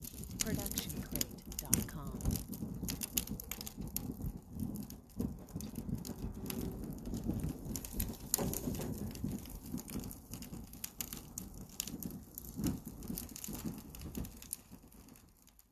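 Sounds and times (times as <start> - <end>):
small outdoor fire burning: 0.0 - 15.7.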